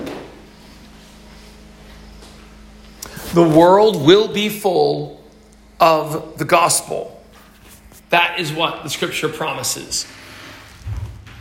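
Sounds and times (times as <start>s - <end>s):
steady low mechanical hum: 0.0s - 11.3s
speech: 3.4s - 5.2s, 5.8s - 7.2s, 8.1s - 10.3s
door shutting with a soft thud: 10.8s - 11.3s.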